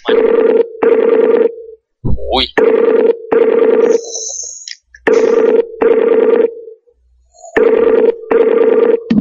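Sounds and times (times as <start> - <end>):
telephone ringing tone on an incoming call: 0.0 - 1.8, 2.6 - 4.3, 5.1 - 6.8, 7.5 - 9.1.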